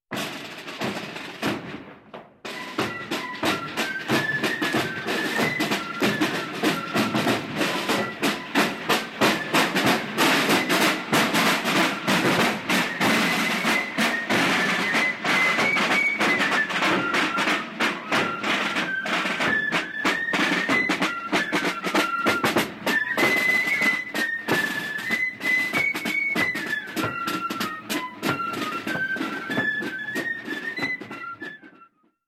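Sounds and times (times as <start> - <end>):
marching band passing by: 0.1 - 31.9.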